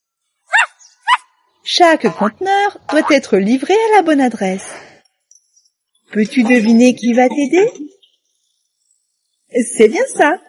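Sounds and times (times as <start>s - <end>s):
small dog barking: 0.5s - 1.3s
speech: 1.7s - 4.9s, 6.1s - 7.9s, 9.5s - 10.4s.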